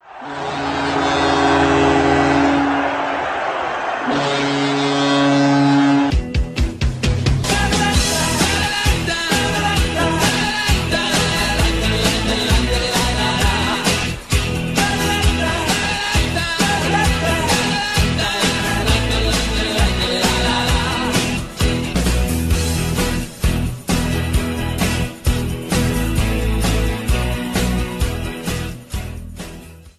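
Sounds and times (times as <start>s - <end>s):
goal anthem ringtone music: 0.0s - 29.9s
foghorn ringtone: 0.2s - 3.1s, 4.1s - 6.2s.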